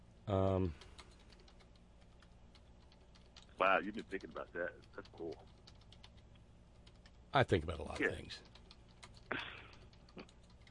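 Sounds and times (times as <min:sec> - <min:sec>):
speech: 0:00.3 - 0:00.9, 0:03.6 - 0:05.6, 0:07.3 - 0:08.5
computer keyboard clicks: 0:00.8 - 0:06.2, 0:07.9 - 0:10.6.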